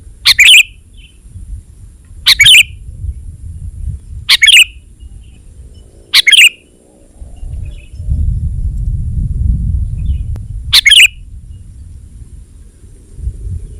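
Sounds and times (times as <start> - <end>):
low background rumble: 0.0 - 13.7
sooty-headed bulbul chirping: 0.3 - 1.1, 2.3 - 2.8, 4.3 - 4.8, 6.1 - 6.7, 10.8 - 11.2.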